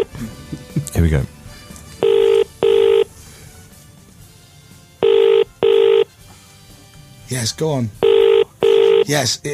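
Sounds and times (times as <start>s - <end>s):
speech: 0.0s - 1.3s, 7.4s - 8.0s, 9.1s - 9.5s
telephone ringing tone on an outgoing call: 2.0s - 3.1s, 5.0s - 6.1s, 8.0s - 9.1s.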